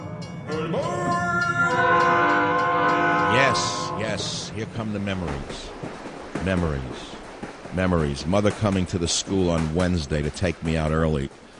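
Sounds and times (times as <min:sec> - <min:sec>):
low rolling train rail noise: 0:00.0 - 0:11.5
train horn or whistle sound effect: 0:00.6 - 0:04.6
speech: 0:03.6 - 0:07.1, 0:07.7 - 0:11.4.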